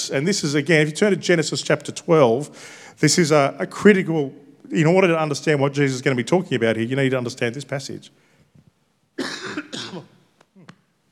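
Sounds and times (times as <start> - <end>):
speech: 0.0 - 8.2
harsh coughs: 9.2 - 10.2
throat clearing: 9.2 - 10.8.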